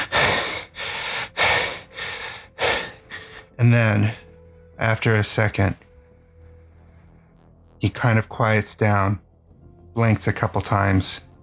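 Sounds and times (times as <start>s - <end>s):
man gasping deep breaths: 0.0s - 4.2s
speech: 3.6s - 4.2s, 4.8s - 5.9s, 7.8s - 9.2s, 10.0s - 11.3s.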